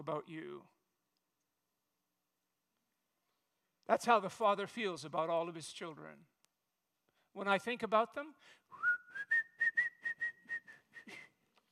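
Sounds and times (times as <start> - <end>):
speech: 0.0 - 0.8, 3.9 - 6.3, 7.4 - 9.3
person whistling a melody: 8.7 - 11.4.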